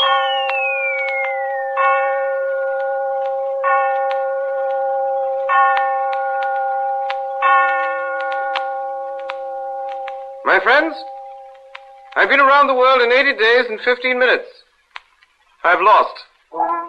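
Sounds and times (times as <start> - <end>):
railway station clocks chiming in London: 0.0 - 0.5, 1.4 - 13.4
speech: 10.6 - 11.1, 12.2 - 14.6, 15.6 - 16.8.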